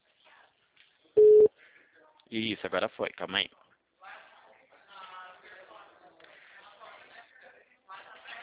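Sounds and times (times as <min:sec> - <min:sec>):
short electronic beep from a video call ringing: 0:01.2 - 0:01.5
speech: 0:02.3 - 0:03.6.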